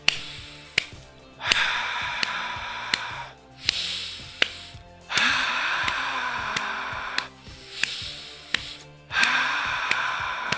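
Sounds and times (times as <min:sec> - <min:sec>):
person inhaling and exhaling in a paced breathing exercise: 0:00.0 - 0:10.5
sharp ticks: 0:00.0 - 0:10.5.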